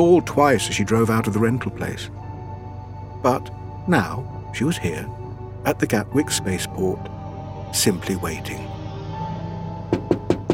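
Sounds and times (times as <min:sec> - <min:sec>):
speech: 0:00.0 - 0:02.2, 0:03.2 - 0:07.1, 0:07.7 - 0:08.7
light knocks on front passenger window of a rented car at the Gatwick spaceport: 0:09.9 - 0:10.5.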